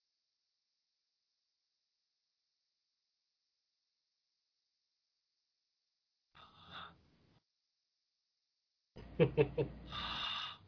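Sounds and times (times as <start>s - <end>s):
heavy breathing: 9.8s - 10.6s.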